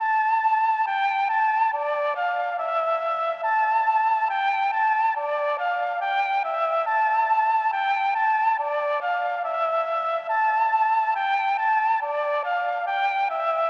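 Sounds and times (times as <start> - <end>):
Mellotron flute in D minor at 140 BPM: 0.0 - 13.6.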